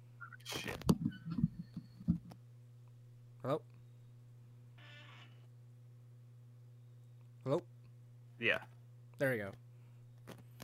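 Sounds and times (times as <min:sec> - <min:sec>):
steady low hum of crackly line interference: 0:00.0 - 0:10.6
dull irregular thumps: 0:00.8 - 0:02.4
speech: 0:03.4 - 0:03.7, 0:08.4 - 0:09.6.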